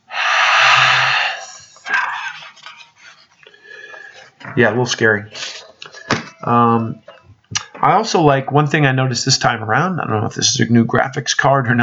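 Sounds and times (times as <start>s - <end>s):
heavy breathing sound effect from a video game: 0.0s - 4.4s, 5.3s - 6.1s
speech: 4.6s - 5.4s, 6.4s - 7.1s, 7.8s - 11.8s.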